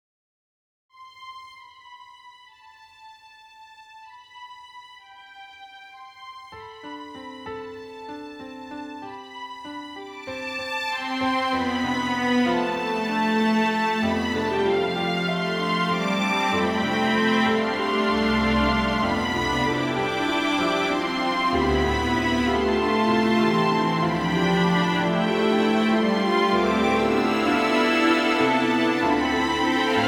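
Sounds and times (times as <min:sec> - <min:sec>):
strings: 0:01.0 - 0:30.0
piano: 0:06.2 - 0:30.0.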